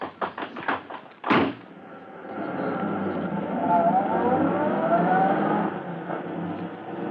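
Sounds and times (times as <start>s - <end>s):
quick knocks: 0.0s - 1.7s
fast car engine roaring and revving hard while speeding away: 1.8s - 7.0s.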